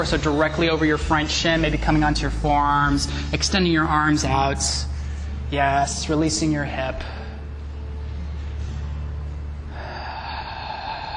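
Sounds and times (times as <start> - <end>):
speech: 0.0 - 4.9, 5.5 - 7.2
low steady hum: 0.0 - 11.1
deep breath close to the microphone: 4.8 - 5.5, 7.0 - 8.9, 9.6 - 11.1.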